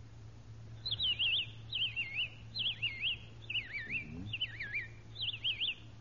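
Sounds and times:
faint low hum: 0.0 - 5.9
voice imitating a robin's song with whistled phrases: 3.6 - 4.9.

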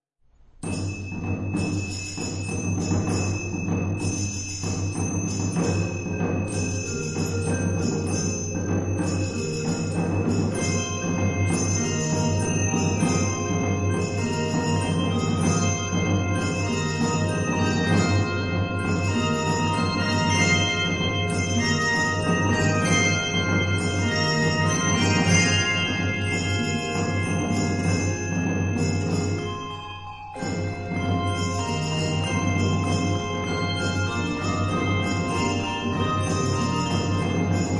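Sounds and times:
4-5 octave handbells ringing: 0.6 - 37.7.

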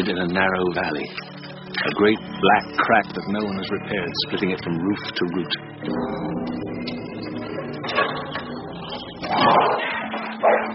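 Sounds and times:
speech: 0.0 - 6.9
dense droning background: 0.0 - 10.7
dogs barking and snarling aggressively at a dark manor house: 9.2 - 10.7.

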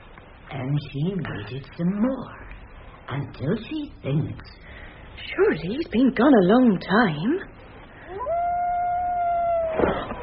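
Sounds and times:
speech: 0.6 - 2.5, 3.1 - 7.6
long wavering howl: 8.1 - 10.2.

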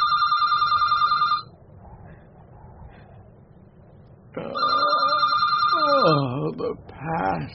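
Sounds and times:
telephone ringing with an electronic trill: 0.0 - 1.5, 4.5 - 6.2
low rumble: 0.0 - 7.5.

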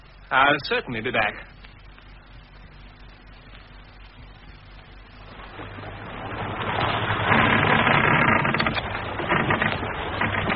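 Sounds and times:
speech: 0.3 - 1.5
boat engine idling: 4.9 - 10.5.

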